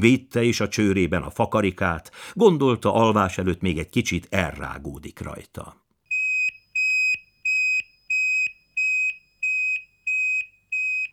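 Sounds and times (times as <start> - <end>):
speech: 0.0 - 5.8
security alarm keypad beeping while arming: 6.1 - 11.1.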